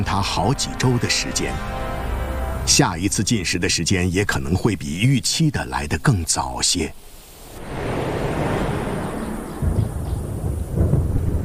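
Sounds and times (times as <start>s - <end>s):
speech: 0.0s - 1.8s, 2.6s - 7.8s
deep thunder rumbling across open plains: 7.4s - 11.4s.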